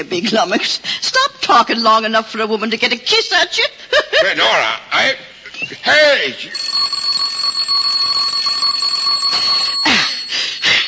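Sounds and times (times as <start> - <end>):
speech: 0.0 - 6.9
electric doorbell ringing in a metallic buzz: 6.6 - 10.8.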